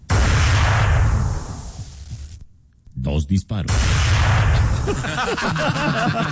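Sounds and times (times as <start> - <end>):
rifle shots: 0.0 - 2.1, 3.7 - 5.3
laughter: 4.8 - 6.2.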